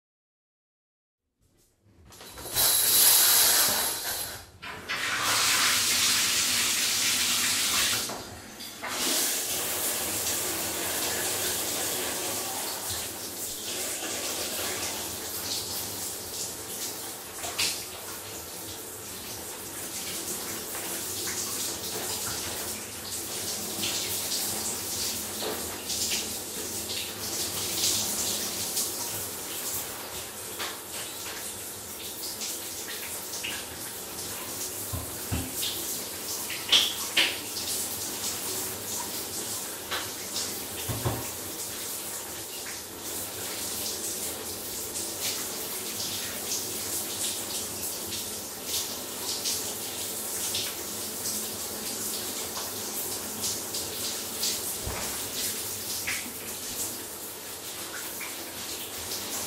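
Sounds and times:
person taking a shower: 1.6 - 59.4.

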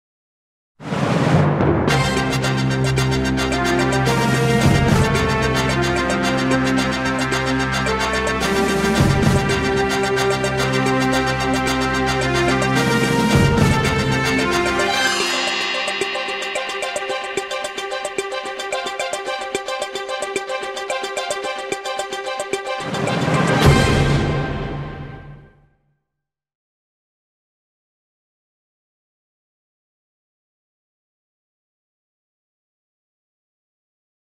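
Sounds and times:
short breaking news theme music: 1.1 - 25.6.

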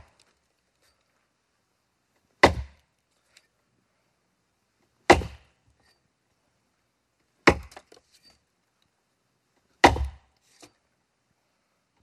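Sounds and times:
axe single hit: 2.5 - 2.7, 5.1 - 5.5, 9.8 - 10.2.

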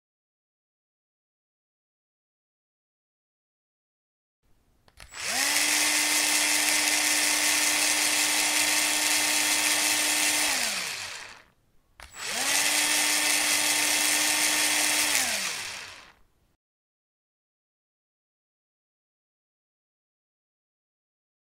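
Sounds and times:
drill: 5.0 - 16.2.

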